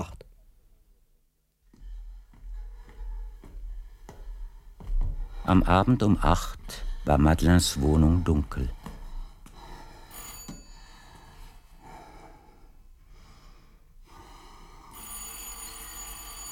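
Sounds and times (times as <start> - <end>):
speech: 5.5 - 8.8
apartment doorbell with bright metallic jangle: 10.1 - 11.0, 15.0 - 16.5.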